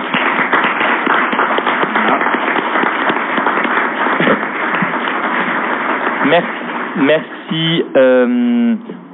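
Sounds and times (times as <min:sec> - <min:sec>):
audience applause with many hands clapping: 0:00.0 - 0:07.8
speech: 0:06.3 - 0:09.0.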